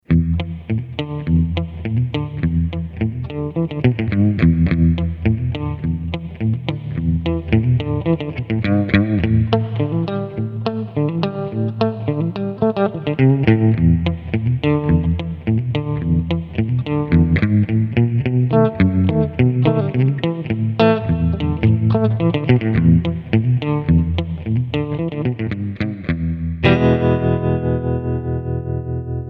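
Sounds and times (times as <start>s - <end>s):
black panel amp tremolo reverb: 0.0s - 29.2s.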